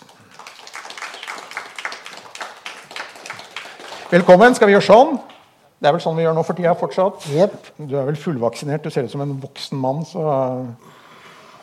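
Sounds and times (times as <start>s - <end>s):
small group applauding an arriving guest: 0.0s - 5.5s
speech: 4.1s - 11.0s.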